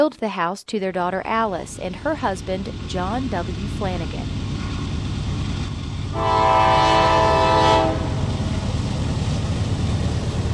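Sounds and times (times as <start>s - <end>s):
speech: 0.0s - 4.4s, 6.2s - 6.8s
low rumble of steam train wheels rolling: 1.5s - 6.3s, 8.1s - 10.5s
steam train horn blast: 6.1s - 8.5s.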